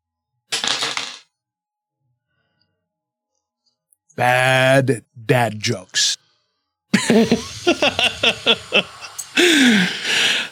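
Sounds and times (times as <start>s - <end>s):
dice tumbling across a hard surface: 0.5s - 1.2s
speech: 4.2s - 6.2s, 7.1s - 10.4s
laughter: 7.0s - 10.4s.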